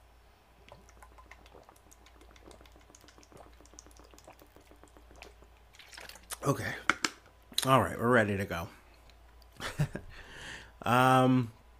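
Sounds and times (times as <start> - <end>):
water pouring into a container with gurgles and drips: 0.7 - 6.4
speech: 6.4 - 6.9, 7.6 - 8.8, 10.8 - 11.6.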